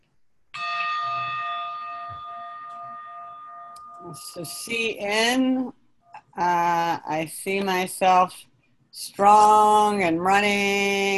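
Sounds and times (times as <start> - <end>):
meditation gong ringing: 0.6 - 4.9
speech: 4.1 - 5.8, 6.4 - 11.1.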